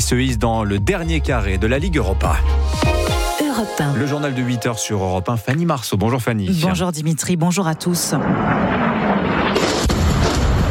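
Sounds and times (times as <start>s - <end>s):
speech: 0.0s - 3.0s, 3.6s - 9.5s
loud deep explosion with heavy low rumble: 8.1s - 10.6s.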